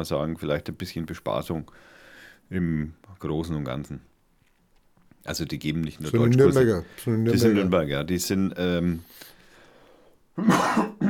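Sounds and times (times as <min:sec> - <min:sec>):
speech: 0:00.0 - 0:04.1, 0:05.2 - 0:09.3, 0:10.4 - 0:11.0
raspy cough: 0:10.4 - 0:11.0
rough throat clearing: 0:10.4 - 0:11.0.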